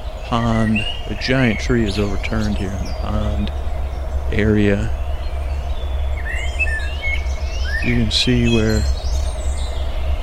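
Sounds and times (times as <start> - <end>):
bird chirping and whistling outdoors by a pond: 0.0 - 10.2
steady low outdoor rumble: 0.0 - 10.2
speech: 0.3 - 3.7, 4.3 - 5.0, 7.8 - 9.0.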